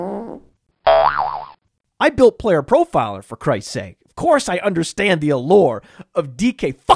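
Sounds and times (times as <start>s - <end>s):
cartoon boing sound effect: 0.9s - 1.6s
speech: 2.0s - 6.9s.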